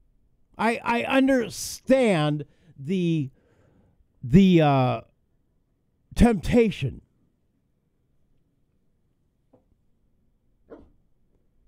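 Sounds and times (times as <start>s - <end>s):
speech: 0.6s - 3.4s, 4.2s - 5.1s, 6.2s - 7.0s
female dog barking: 10.7s - 11.0s.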